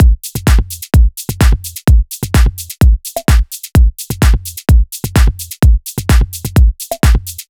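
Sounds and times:
full drum kit beat: 0:00.0 - 0:07.4.

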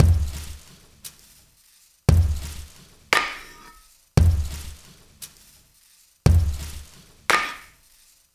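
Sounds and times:
drum loop with stones at 115 bpm: 0:00.0 - 0:01.1, 0:02.1 - 0:05.4, 0:06.3 - 0:07.8.

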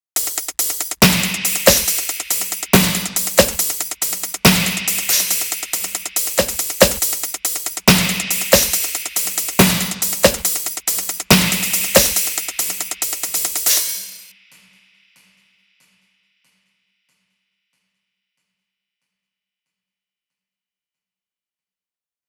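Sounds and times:
electronic dance music loop: 0:00.0 - 0:14.3.

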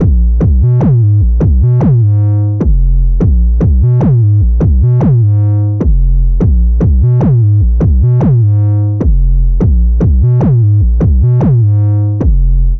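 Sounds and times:
808 drum machine: 0:00.0 - 0:12.7
bass: 0:00.0 - 0:12.7.

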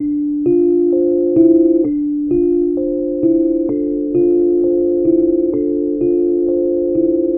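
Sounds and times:
dark low Rhodes electric piano loop in C: 0:00.0 - 0:07.3.

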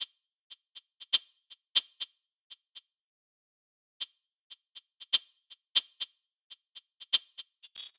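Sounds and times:
drum loop at 120 BPM: 0:00.0 - 0:02.1, 0:04.5 - 0:07.9.

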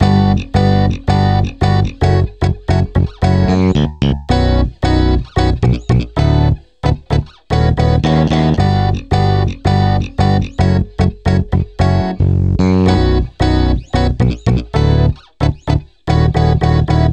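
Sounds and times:
chord loop in B minor: 0:00.0 - 0:17.1.

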